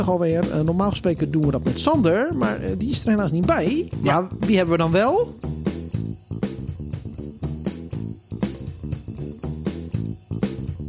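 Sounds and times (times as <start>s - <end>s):
speech: 0.0s - 7.5s
rhythmic musical backing with regular beats and low tones: 0.0s - 10.8s
crickets chirping: 5.3s - 10.8s.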